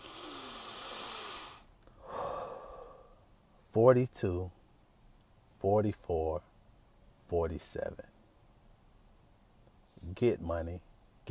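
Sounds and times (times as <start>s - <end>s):
deep breath: 0.0s - 3.2s
speech: 3.7s - 4.6s, 5.6s - 6.5s, 7.3s - 8.1s, 10.0s - 11.2s.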